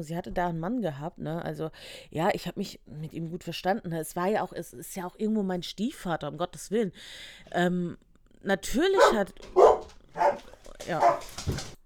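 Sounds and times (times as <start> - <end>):
speech: 0.0 - 11.8
dog barking: 8.9 - 11.8.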